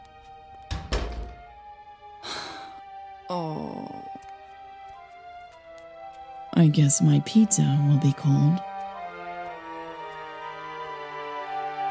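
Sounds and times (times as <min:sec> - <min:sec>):
front door swinging shut with a solid thunk: 0:00.7 - 0:01.4
speech: 0:03.3 - 0:04.0, 0:06.6 - 0:08.7.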